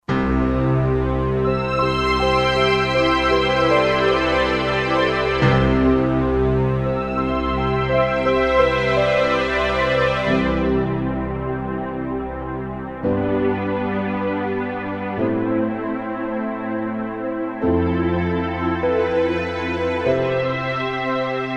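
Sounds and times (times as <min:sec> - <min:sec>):
synthesizer piano and strings orchestral patch: 0:00.0 - 0:21.5.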